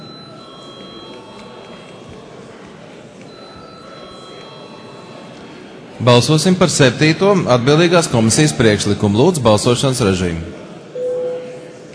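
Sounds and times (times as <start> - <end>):
electric bell ringing in a parliament chamber to call members to a vote: 0.0 - 1.8, 3.3 - 5.3
speech: 6.0 - 10.6.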